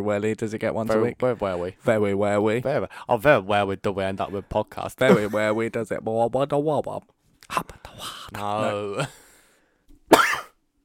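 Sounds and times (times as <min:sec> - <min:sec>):
speech: 0:00.0 - 0:09.2
person coughing or sneezing: 0:10.1 - 0:10.6.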